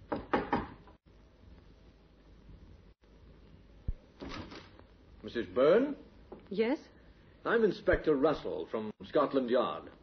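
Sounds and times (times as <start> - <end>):
knocking on the wooden door of a small flat: 0.0 - 0.8
faint hiss: 0.0 - 10.0
speech: 5.2 - 10.0.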